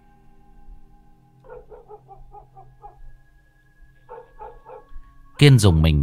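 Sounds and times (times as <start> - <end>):
neighbour's dog barking: 1.4 - 3.1, 4.1 - 5.0
speech: 5.4 - 6.0.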